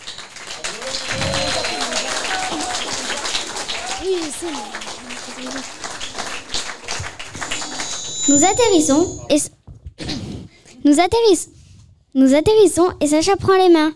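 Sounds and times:
crowd applauding: 0:00.0 - 0:09.3
voices talking and calling out: 0:00.6 - 0:09.5
speech: 0:04.3 - 0:05.9, 0:08.3 - 0:09.6, 0:10.9 - 0:11.6, 0:12.2 - 0:13.9.

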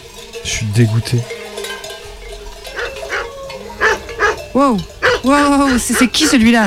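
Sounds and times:
faint livestock sounds in a farmyard: 0:00.0 - 0:06.6
speech: 0:00.4 - 0:01.4, 0:04.6 - 0:06.6
dog barking: 0:02.8 - 0:06.6.

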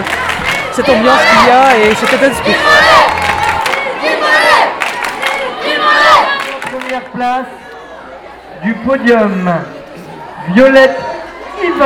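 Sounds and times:
crowd shouting encouragement at a race: 0:00.0 - 0:11.8
speech: 0:00.8 - 0:03.2, 0:07.0 - 0:07.7, 0:08.6 - 0:09.8, 0:10.4 - 0:11.8.

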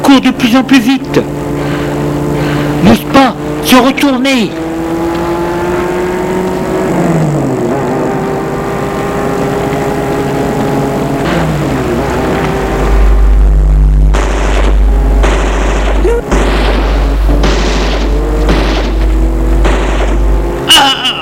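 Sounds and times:
car engine accelerating through gear changes: 0:00.0 - 0:21.2
speech: 0:00.2 - 0:01.4, 0:02.8 - 0:04.6
gunshots: 0:11.2 - 0:11.9, 0:14.0 - 0:21.1.

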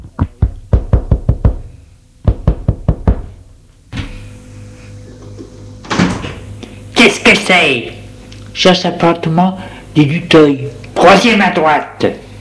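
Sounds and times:
knocking on the door of a concierge's lodge: 0:00.1 - 0:03.3
speech: 0:07.0 - 0:08.0, 0:08.6 - 0:12.2.

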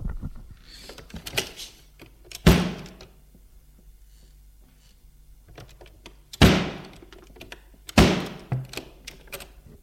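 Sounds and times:
heavy door slamming: 0:06.4 - 0:06.9, 0:08.0 - 0:08.7.

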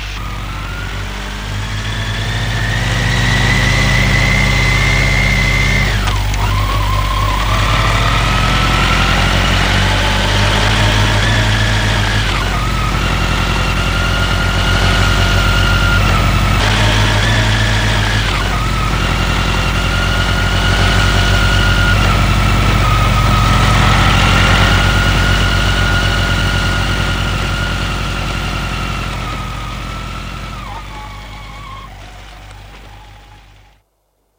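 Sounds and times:
scooter engine idling: 0:00.2 - 0:33.8.

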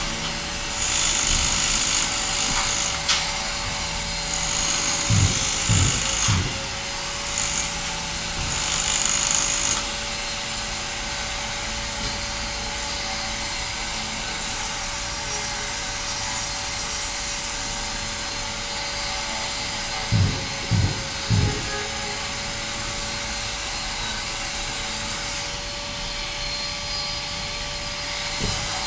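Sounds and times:
steady mechanical hum from renovation work on a footbridge: 0:00.0 - 0:28.8
sharp knocks and bangs from renovation work on a footbridge: 0:04.4 - 0:06.7, 0:20.0 - 0:22.1.

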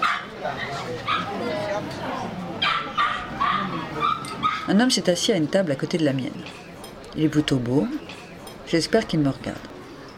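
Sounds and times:
dogs barking and yipping at a café terrace: 0:00.0 - 0:01.5, 0:02.6 - 0:04.8
murmur of people chatting outdoors at a café terrace: 0:00.0 - 0:10.1
speech: 0:04.7 - 0:08.1, 0:08.7 - 0:09.8.

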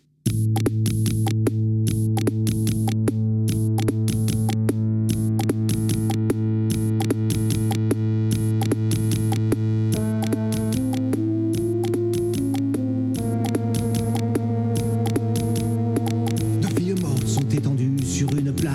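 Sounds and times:
loud sustained synth bass and chords: 0:00.3 - 0:18.7
choppy stuttering rhythmic pulses of electronic music: 0:00.4 - 0:18.7
singer's melodic line in electronic music track: 0:16.6 - 0:18.7.

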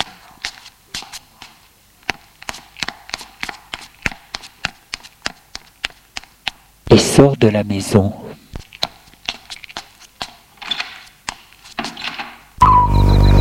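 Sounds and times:
girl's footsteps descending a staircase: 0:00.0 - 0:06.7, 0:08.6 - 0:12.6
speech: 0:07.0 - 0:08.2.

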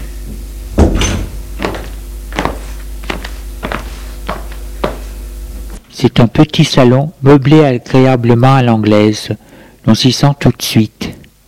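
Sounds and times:
low steady hum: 0:00.0 - 0:11.4
door opening with a heavy clunk in a small tiled house hallway: 0:00.8 - 0:01.8
speech: 0:06.0 - 0:11.1.

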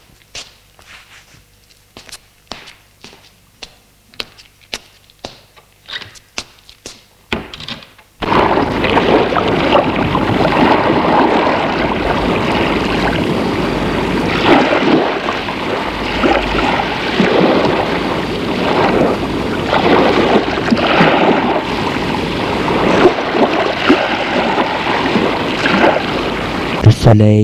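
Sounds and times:
strong hot wind blowing sand: 0:08.2 - 0:26.9
speech: 0:27.1 - 0:27.4.

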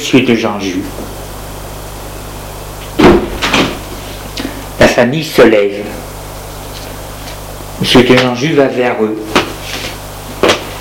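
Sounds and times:
speech: 0:00.0 - 0:01.2, 0:05.0 - 0:06.0, 0:07.8 - 0:09.4
door thudding shut: 0:03.0 - 0:03.8.

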